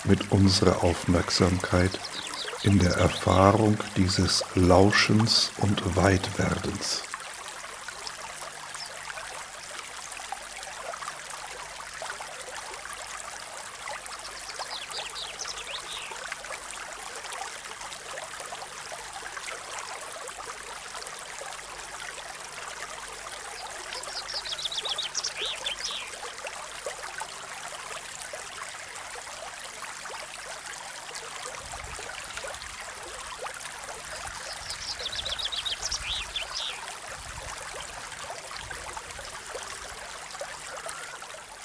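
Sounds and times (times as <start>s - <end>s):
speech: 0.0s - 7.1s
flowing river water: 0.0s - 41.6s
faint bird chirps: 1.9s - 3.3s, 23.5s - 26.3s, 34.4s - 36.9s.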